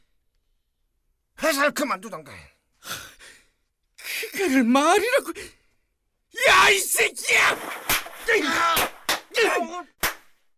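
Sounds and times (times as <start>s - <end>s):
speech: 1.4s - 3.0s, 4.4s - 5.6s, 6.4s - 10.0s
fist blows hitting a person: 7.3s - 10.4s.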